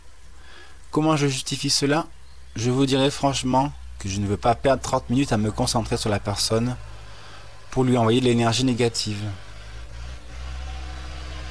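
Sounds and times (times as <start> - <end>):
speech: 0.9 - 6.9, 7.7 - 9.4
tractor engine running at Christmas: 2.6 - 11.4.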